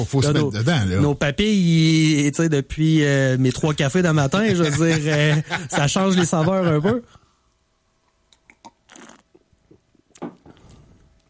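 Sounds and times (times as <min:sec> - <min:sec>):
speech: 0:00.0 - 0:07.2
laughter: 0:04.2 - 0:07.1
person sipping beer from a glass: 0:08.3 - 0:09.8.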